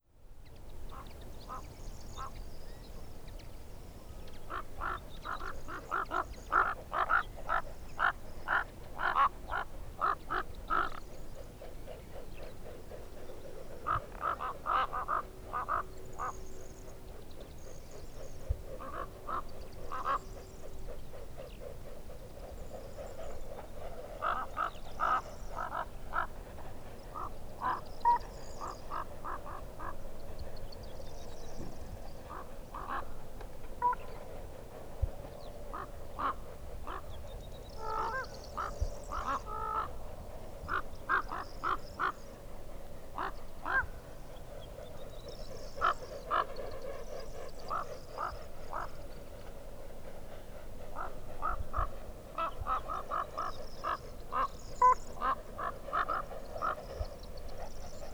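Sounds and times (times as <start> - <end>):
Corvus corax raven calling: 4.5 - 11.2, 13.7 - 16.5, 18.7 - 20.4, 23.1 - 30.0, 32.2 - 33.2, 33.8 - 34.6, 35.6 - 42.4, 43.2 - 44.2, 45.8 - 49.1, 50.9 - 57.1.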